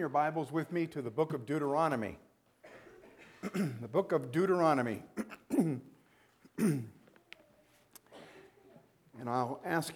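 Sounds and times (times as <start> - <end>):
speech: 0.0 - 2.3, 3.5 - 5.9, 6.6 - 7.0, 9.2 - 9.9
person coughing with throaty rasping clearing: 2.6 - 3.8, 5.2 - 5.8, 6.6 - 7.0.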